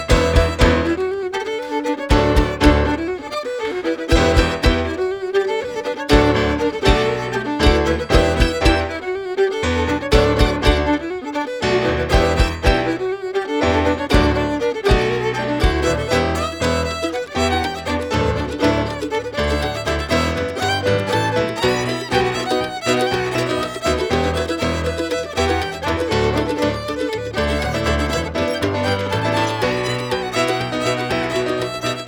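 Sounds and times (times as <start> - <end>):
mandolin chops: 0.0 - 32.0.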